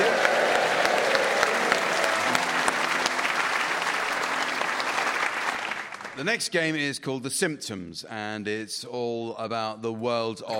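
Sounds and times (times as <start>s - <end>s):
large audience applauding: 0.0s - 6.4s
speech: 6.2s - 10.5s.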